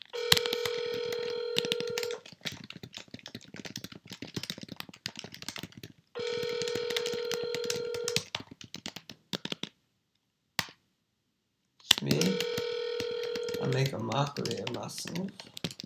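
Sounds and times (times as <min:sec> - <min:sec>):
house phone keypad button clicks: 0:00.2 - 0:02.2, 0:06.2 - 0:08.2, 0:12.0 - 0:14.8
speech: 0:13.8 - 0:15.6.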